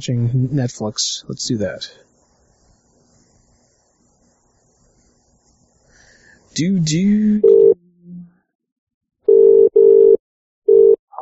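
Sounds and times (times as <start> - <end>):
speech: 0.0 - 2.0, 6.6 - 7.8
telephone line tone on an outgoing call to a UK number: 7.4 - 7.8, 9.3 - 11.0.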